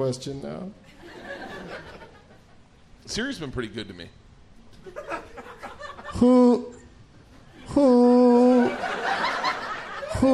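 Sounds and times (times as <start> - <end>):
speech: 0.0 - 1.0, 3.1 - 4.2, 6.2 - 6.8, 7.7 - 9.4
laughter: 0.9 - 2.6, 4.8 - 6.7, 7.5 - 10.3
person's voice imitating an owl with drawn-out hoots: 7.6 - 8.8.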